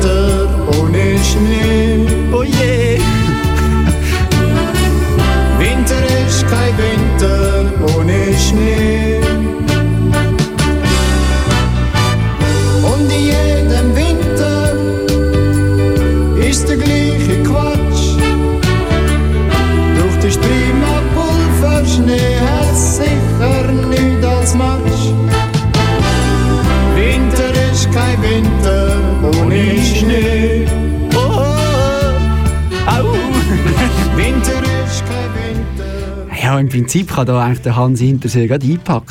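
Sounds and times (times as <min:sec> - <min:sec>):
sentimental schmaltzy pop song with full band: 0:00.0 - 0:39.0
speech: 0:01.3 - 0:02.8, 0:36.9 - 0:39.0
laughter: 0:02.8 - 0:05.0, 0:32.9 - 0:35.2.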